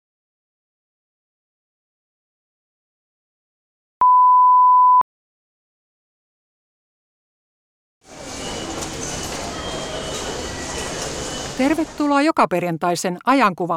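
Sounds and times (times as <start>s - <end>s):
single steady beep: 4.0s - 5.0s
continuous crowd noise in a busy railway station: 8.1s - 12.1s
train rumbling in a railway station: 8.1s - 12.1s
speech: 11.6s - 13.7s.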